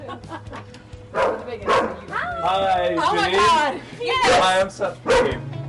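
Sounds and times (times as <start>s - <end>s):
laughter: 0.0s - 0.8s
dog barking at a house: 1.1s - 2.0s, 5.1s - 5.4s
speech: 2.4s - 5.5s.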